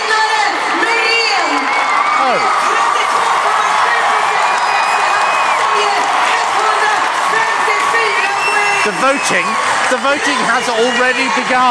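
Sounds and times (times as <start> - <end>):
large crowd cheering with shouts, whoops and applause: 0.0 - 11.6
speech: 8.9 - 11.6.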